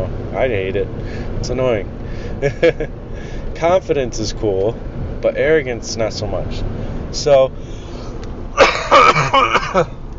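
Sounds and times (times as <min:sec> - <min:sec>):
speech: 0:00.4 - 0:03.0, 0:03.6 - 0:07.8, 0:08.9 - 0:10.0
man coughing roughly: 0:08.6 - 0:10.0.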